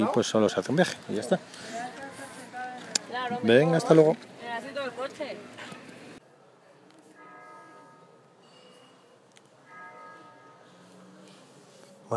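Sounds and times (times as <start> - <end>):
speech: 0.0 - 1.8, 3.3 - 4.3
voices and bustle: 0.0 - 12.1
church bells chiming the hour: 7.2 - 9.0, 9.6 - 11.0.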